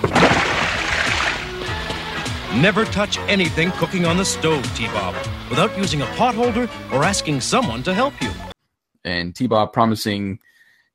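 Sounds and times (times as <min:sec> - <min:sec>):
water thrown onto a person: 0:00.0 - 0:01.6
speech: 0:02.6 - 0:08.4, 0:09.0 - 0:10.9.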